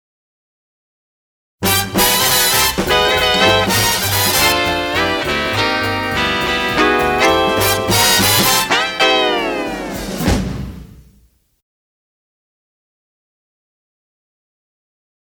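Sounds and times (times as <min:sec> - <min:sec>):
guitar riff: 0:01.6 - 0:10.1.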